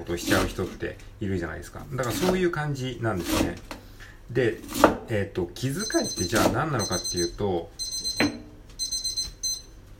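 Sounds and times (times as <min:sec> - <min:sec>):
speech: 0:00.0 - 0:07.8
kitchen timer beeping: 0:05.8 - 0:09.7.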